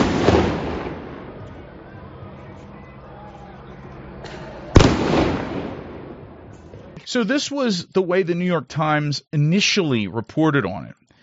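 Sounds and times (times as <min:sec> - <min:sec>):
police flashbang devices exploding: 0:00.0 - 0:01.4, 0:04.7 - 0:06.3
fireworks exploding: 0:00.0 - 0:01.8, 0:04.3 - 0:07.0
murky noise: 0:00.0 - 0:08.6
speech: 0:07.1 - 0:11.0.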